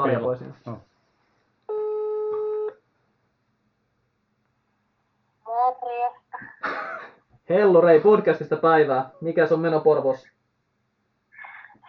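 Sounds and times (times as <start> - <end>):
speech: 0.0 - 0.9, 7.5 - 10.4
electronic ringback tone of an outgoing phone call: 1.7 - 2.8.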